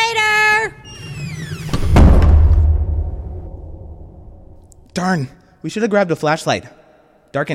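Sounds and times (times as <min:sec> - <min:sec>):
heavy door hinges squealing: 0:00.8 - 0:02.1
heavy door shutting with deep booming thud: 0:00.9 - 0:04.6
speech: 0:05.0 - 0:07.5.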